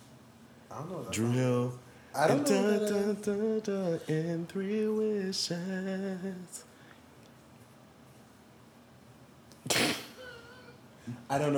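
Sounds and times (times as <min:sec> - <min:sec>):
faint room hum: 0:00.0 - 0:11.5
speech: 0:00.7 - 0:06.7, 0:11.1 - 0:11.5
sneeze: 0:09.6 - 0:10.8.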